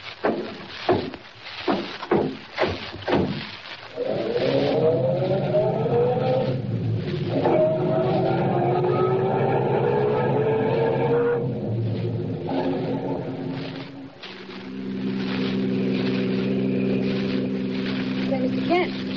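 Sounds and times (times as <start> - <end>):
knocks and thumps: 0.2 - 3.7
car engine accelerating while driving off at night: 4.0 - 19.1.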